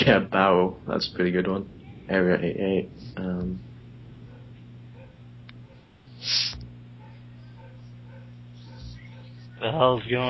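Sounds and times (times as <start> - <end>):
speech: 0.0 - 3.7, 6.2 - 6.6, 9.6 - 10.2
steady low electrical hum: 0.0 - 10.2
dog barking outdoors: 4.2 - 6.0, 6.9 - 9.6.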